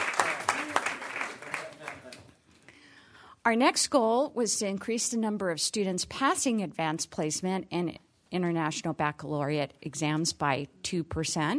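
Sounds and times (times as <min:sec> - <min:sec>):
audience applause: 0:00.0 - 0:02.3
speech: 0:03.4 - 0:11.5.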